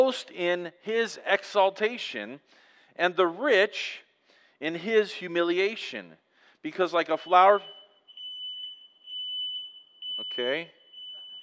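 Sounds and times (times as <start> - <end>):
speech: 0.0 - 4.0, 4.6 - 7.8, 10.2 - 10.8
high-pitched fire alarm pulsing: 7.1 - 11.4.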